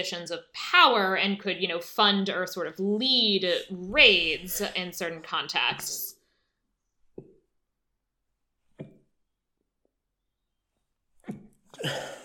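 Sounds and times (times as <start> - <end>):
speech: 0.0 - 6.1, 11.8 - 12.2
person sneezing: 11.8 - 12.2.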